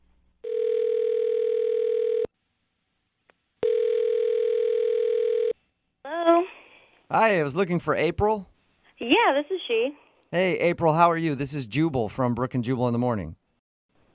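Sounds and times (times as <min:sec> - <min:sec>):
phone ringing tones: 0:00.4 - 0:02.3, 0:03.6 - 0:05.6
speech: 0:07.2 - 0:13.4.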